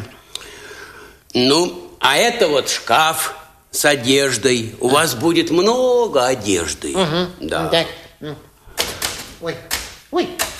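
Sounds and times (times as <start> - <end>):
speech: 1.3 - 8.5, 9.4 - 10.4
person murmuring: 6.8 - 8.5
typewriter key strikes: 8.7 - 10.5.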